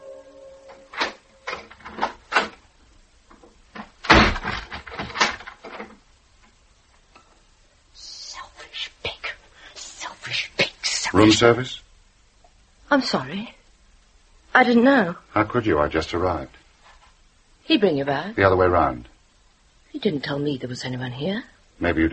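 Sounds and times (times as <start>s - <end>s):
door slamming: 0.8s - 2.6s, 3.8s - 6.0s
speech: 11.2s - 11.9s, 12.9s - 13.6s, 14.6s - 16.6s, 17.7s - 19.1s, 19.9s - 22.1s.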